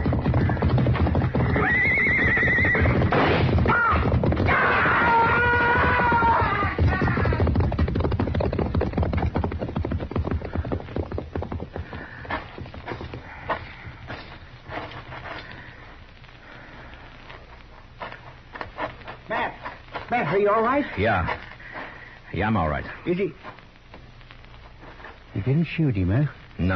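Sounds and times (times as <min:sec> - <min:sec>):
horses neighing: 0:00.0 - 0:14.0
clatter of horse hooves and scuffling: 0:00.0 - 0:16.0, 0:17.1 - 0:25.3
speech: 0:20.4 - 0:21.4, 0:22.4 - 0:23.6, 0:25.5 - 0:26.7.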